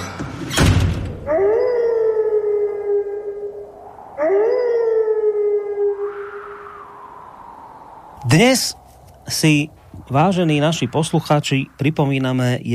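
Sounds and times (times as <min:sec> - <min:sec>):
wolf howling: 0:01.2 - 0:08.0
speech: 0:08.4 - 0:12.7.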